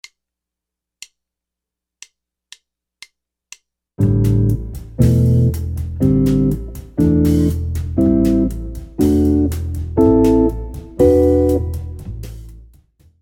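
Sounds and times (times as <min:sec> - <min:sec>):
jazz guitar chords: 0:04.0 - 0:12.6.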